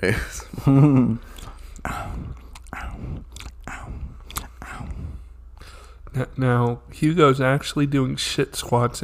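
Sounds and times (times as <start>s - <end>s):
speech: 0.0s - 2.0s, 6.2s - 9.0s
chewing sour candy close to the microphone: 1.3s - 5.0s.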